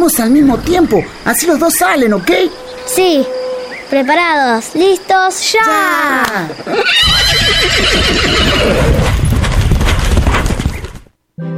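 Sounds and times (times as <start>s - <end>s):
speech: 0.0s - 9.2s
horse whinnying: 6.6s - 9.3s
horses galloping off pulling a bouncing cart: 6.6s - 11.2s
bouncing cart rattling: 8.8s - 11.1s.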